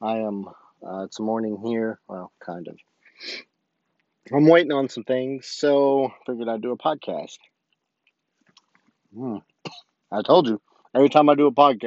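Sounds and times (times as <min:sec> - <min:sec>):
speech: 0:00.0 - 0:03.5, 0:04.3 - 0:07.5, 0:09.1 - 0:11.8
faint mouth clicks and smacking sounds: 0:07.4 - 0:10.0
throat clearing: 0:09.2 - 0:09.9.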